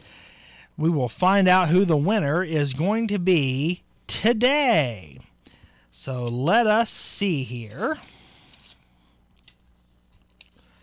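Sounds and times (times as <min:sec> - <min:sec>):
speech: 0:00.8 - 0:05.3, 0:06.0 - 0:08.1
paper entry slips for a prize drawing being shuffled and rustled: 0:07.6 - 0:10.8.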